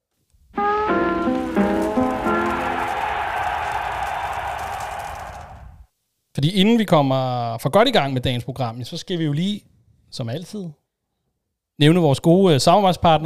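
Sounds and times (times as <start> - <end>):
quick stepped musical notes of a podcast divider jingle: 0.6 - 4.6
speech: 6.4 - 10.8, 11.8 - 13.2.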